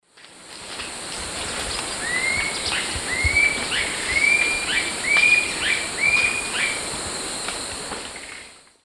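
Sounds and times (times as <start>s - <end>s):
Galbula chalcothorax call in the Eastern Lowlands of South America: 2.0s - 6.8s.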